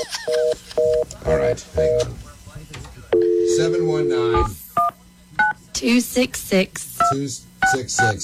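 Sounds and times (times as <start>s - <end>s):
speech: 0.3s - 2.3s, 3.6s - 4.6s, 5.8s - 8.2s
steady telephone dial tone: 3.2s - 4.4s.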